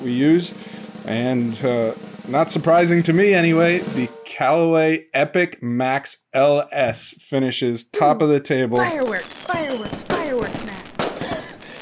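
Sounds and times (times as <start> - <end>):
speech: 0.0 - 10.6
fireworks effect sharp bangs: 8.8 - 11.8
fireworks whistling and falling tones: 9.2 - 10.4.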